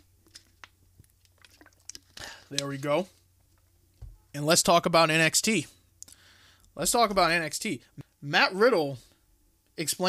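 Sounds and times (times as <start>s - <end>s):
person sipping water with slurps, lip clicks and a swallow: 1.0s - 2.5s
speech: 2.5s - 3.2s, 4.4s - 5.8s, 6.8s - 9.1s, 9.8s - 10.0s.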